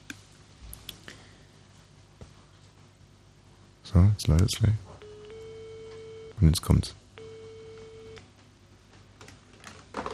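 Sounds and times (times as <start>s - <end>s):
speech: 3.9s - 4.9s, 6.4s - 7.0s
telephone ring tone while calling a mobile phone: 5.0s - 6.4s, 7.2s - 8.2s.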